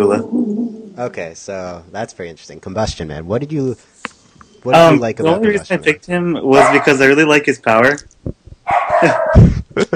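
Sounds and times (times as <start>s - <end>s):
speech: 0.0s - 4.0s, 4.6s - 8.4s, 9.0s - 9.9s
dog barking and yipping: 6.6s - 7.0s, 8.7s - 9.4s.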